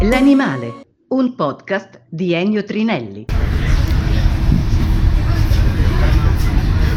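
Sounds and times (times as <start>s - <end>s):
speech: 0.1s - 3.3s
passenger train rumbling in motion: 3.3s - 6.9s.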